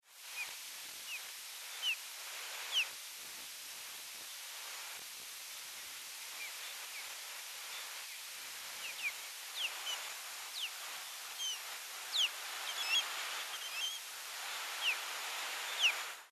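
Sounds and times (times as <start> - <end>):
osprey calling in Belize: 0.3 - 2.0, 2.6 - 2.9, 6.3 - 16.2
birds singing in Belize: 1.1 - 2.0, 7.7 - 14.1, 14.7 - 15.0, 15.6 - 16.0.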